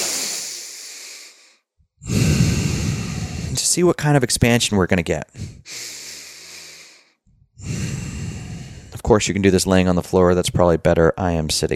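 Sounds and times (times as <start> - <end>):
deep breaths taken while seated in a chair: 0.0 - 3.7, 5.3 - 9.1
speech: 3.7 - 5.9, 9.1 - 11.7.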